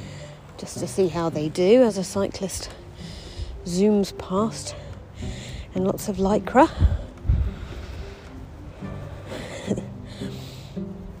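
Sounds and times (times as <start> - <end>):
speech: 0.6 - 2.8, 3.6 - 4.8, 5.8 - 7.0
strong wind buffeting a microphone: 0.6 - 8.9.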